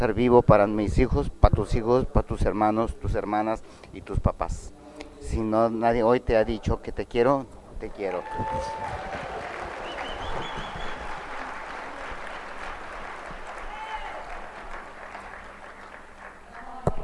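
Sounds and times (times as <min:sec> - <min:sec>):
speech: 0:00.0 - 0:09.3
audience clapping: 0:08.1 - 0:17.0
loud clap or thump: 0:08.8 - 0:11.3.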